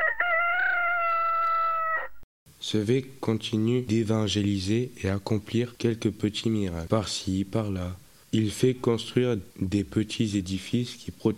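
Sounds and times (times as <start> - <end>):
rooster crowing: 0.0 - 2.2
speech: 2.7 - 11.3.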